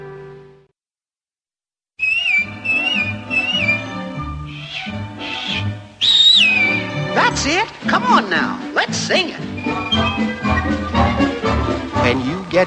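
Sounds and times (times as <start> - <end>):
whistled melody: 2.0 - 7.6, 9.4 - 12.1
instrumental backing: 2.0 - 12.6
speech: 7.3 - 10.5, 12.0 - 12.6.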